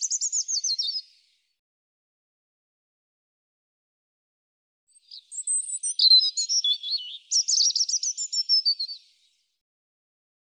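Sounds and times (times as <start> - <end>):
European robin singing: 0.0 - 1.3, 4.9 - 9.4.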